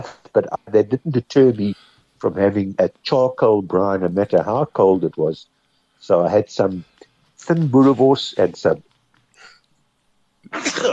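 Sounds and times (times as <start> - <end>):
speech: 0.0 - 8.9, 10.5 - 10.9
loud sneeze caused by dust up the nose: 10.5 - 10.9.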